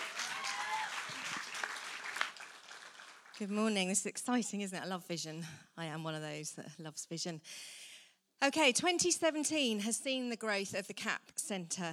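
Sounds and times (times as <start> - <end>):
faint voices and cheers: 0.0 - 1.6
audience applauding: 0.0 - 3.5
speech: 3.4 - 7.8, 8.4 - 11.9.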